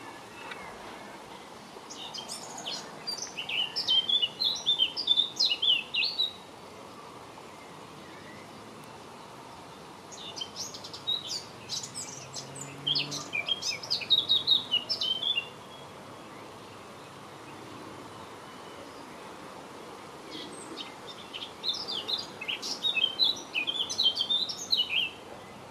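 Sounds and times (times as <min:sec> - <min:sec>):
quiet hiss: 0:00.0 - 0:25.6
blackcap singing: 0:01.9 - 0:06.4, 0:10.1 - 0:15.8, 0:20.3 - 0:25.2.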